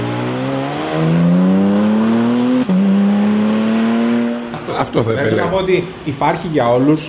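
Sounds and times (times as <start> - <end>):
naturally aspirated GT3 engine in a Spider RS sports car revving: 0.0 - 5.5
speech: 4.9 - 7.0.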